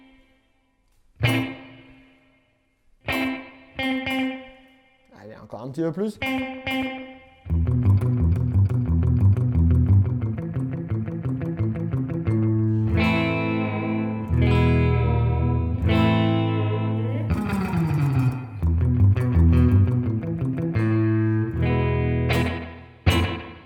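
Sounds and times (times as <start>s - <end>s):
chord-heavy instrument with slapback delay effect: 1.2s - 5.1s, 6.2s - 23.6s
speech: 5.4s - 6.9s.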